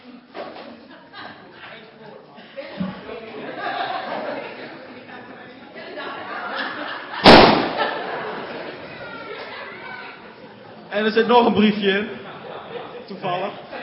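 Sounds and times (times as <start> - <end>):
chatter: 0.0 - 13.8
chuckling voices: 0.5 - 5.1, 5.8 - 10.9, 12.1 - 13.8
balloon stomped on until it pops: 7.2 - 7.8
speech: 11.0 - 12.2, 13.1 - 13.6.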